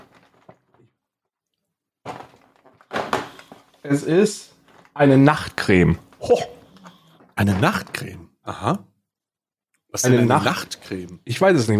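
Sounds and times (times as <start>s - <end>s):
cardboard door of a beauty advent calendar rustling and tearing: 0.0s - 0.8s, 2.1s - 3.8s
faint handling noises of a beauty advent calendar: 0.0s - 1.1s, 2.0s - 8.1s
speech: 3.8s - 6.6s, 7.4s - 8.9s, 9.9s - 11.7s.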